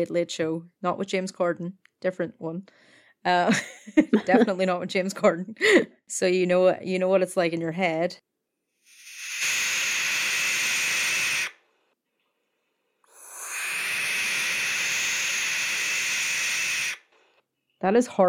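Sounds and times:
speech: 0:00.0 - 0:08.3, 0:17.8 - 0:18.2
barn owl harsh breathy hissing screech: 0:08.8 - 0:11.6, 0:13.1 - 0:17.1.

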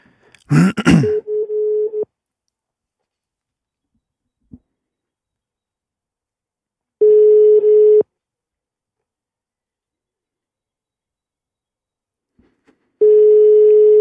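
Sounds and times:
telephone call ringing tone: 0:01.2 - 0:02.1, 0:07.0 - 0:08.0, 0:13.0 - 0:13.9.

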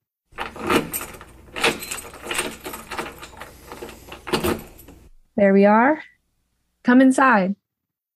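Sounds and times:
door being unlocked and pushed open with a clunk and creak: 0:00.3 - 0:05.1
keys jangling and rattling in a lock: 0:00.3 - 0:05.1
speech: 0:05.4 - 0:06.1, 0:06.8 - 0:07.6.

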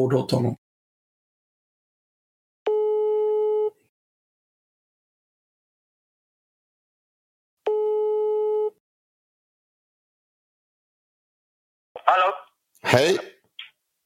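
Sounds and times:
speech: 0:00.0 - 0:00.6, 0:12.1 - 0:13.3
outgoing call telephone ringing tone: 0:02.7 - 0:03.8, 0:07.6 - 0:08.8.

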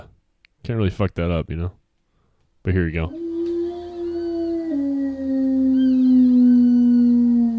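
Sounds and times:
speech: 0:00.7 - 0:01.8, 0:02.6 - 0:03.2
sustained howl: 0:03.1 - 0:07.5.

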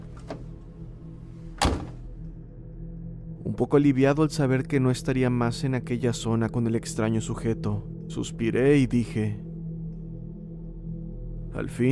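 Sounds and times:
car doors slamming shut: 0:01.6 - 0:02.1
speech: 0:03.6 - 0:09.5, 0:11.6 - 0:11.9.

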